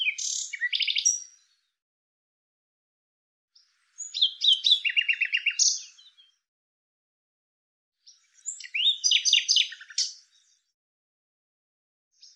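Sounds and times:
Common Nightingale singing with trills and buzzy rattles: 0:00.0 - 0:01.8, 0:03.6 - 0:06.5, 0:08.0 - 0:10.8, 0:12.1 - 0:12.3.

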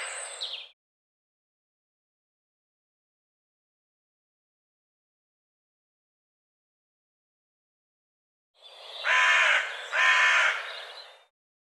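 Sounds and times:
corvid-like bird giving harsh hoarse caws: 0:00.0 - 0:00.3, 0:09.0 - 0:11.0.

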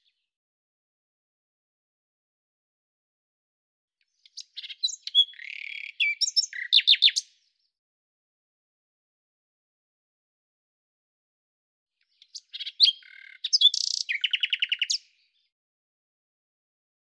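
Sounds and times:
common nightingale singing: 0:04.2 - 0:07.4, 0:12.0 - 0:15.4.

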